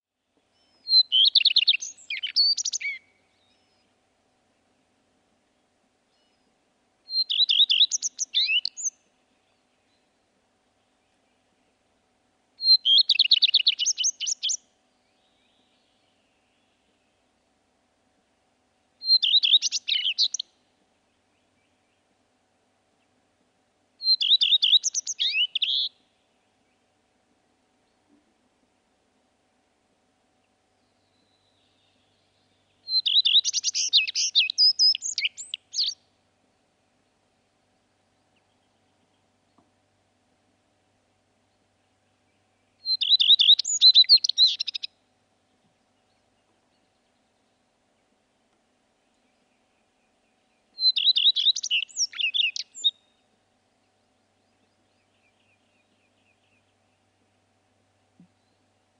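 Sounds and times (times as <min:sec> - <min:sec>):
flycatcher singing a short clear phrase: 0:00.6 - 0:03.9, 0:07.1 - 0:09.0, 0:12.6 - 0:14.6, 0:19.0 - 0:20.5, 0:24.0 - 0:26.0, 0:30.8 - 0:36.0, 0:42.8 - 0:44.9, 0:49.1 - 0:53.2.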